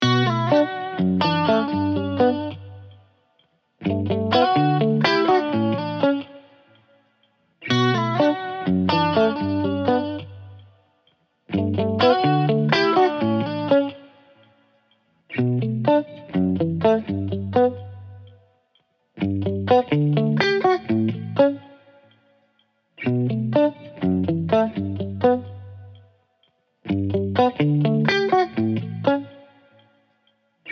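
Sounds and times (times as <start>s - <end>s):
electric guitar loop in B minor: 0.0s - 3.0s, 3.8s - 6.9s, 7.6s - 10.8s, 11.5s - 14.5s, 15.3s - 18.4s, 19.2s - 22.1s, 23.0s - 26.1s, 26.8s - 29.8s.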